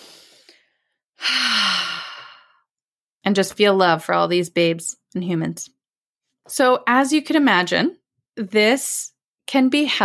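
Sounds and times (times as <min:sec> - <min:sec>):
deep breath: 0:00.0 - 0:02.7
speech: 0:03.2 - 0:05.8, 0:06.5 - 0:10.0.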